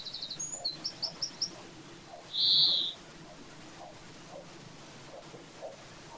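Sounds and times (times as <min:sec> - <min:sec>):
European greenfinch Chloris chloris chipping notes: 0:00.0 - 0:03.0.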